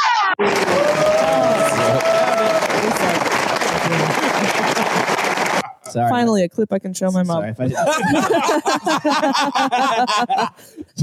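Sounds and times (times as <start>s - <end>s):
crowd applause: 0.3s - 5.7s
laughter: 3.7s - 5.9s, 7.6s - 11.0s
speech: 6.0s - 11.0s.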